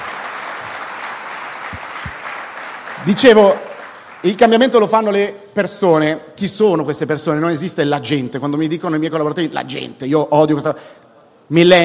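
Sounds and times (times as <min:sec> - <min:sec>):
audience applause at a speech: 0:00.0 - 0:04.5
speech: 0:03.0 - 0:11.8.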